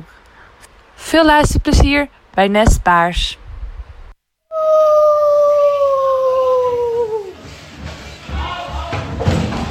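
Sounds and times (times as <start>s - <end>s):
speech: 1.2s - 3.4s
child imitating a wolf howl: 4.5s - 7.4s.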